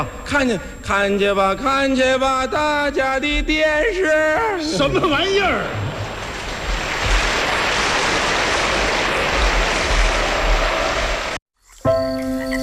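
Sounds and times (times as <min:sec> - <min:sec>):
speech: 0:00.0 - 0:05.9
deep loud thunder rumbling: 0:04.7 - 0:11.4
heavy rain pouring and splashing on the ground: 0:04.8 - 0:11.4.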